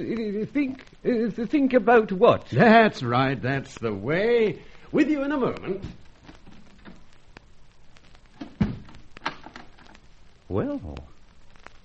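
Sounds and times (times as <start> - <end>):
speech: 0.0 - 6.1, 10.5 - 11.1
faint rustling background: 0.0 - 11.8
door shutting thud: 8.4 - 9.5.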